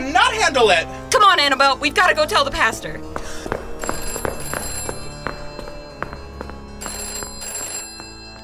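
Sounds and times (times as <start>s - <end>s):
speech: 0.5s - 3.1s
telephone ringing with a trilling bell: 3.8s - 8.4s.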